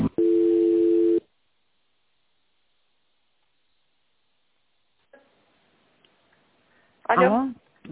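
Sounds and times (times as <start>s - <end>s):
telephone line tones during a call transfer: 0.2s - 1.2s
speech: 7.1s - 7.9s.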